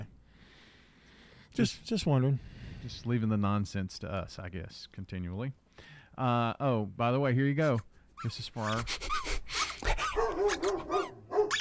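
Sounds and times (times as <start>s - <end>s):
speech: 1.6s - 9.1s
dog barking with sharp yelping barks: 10.0s - 11.5s.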